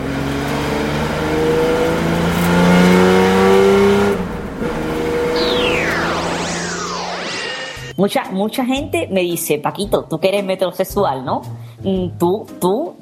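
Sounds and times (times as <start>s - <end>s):
loud car engine revving: 0.0s - 7.9s
speech: 8.0s - 13.0s.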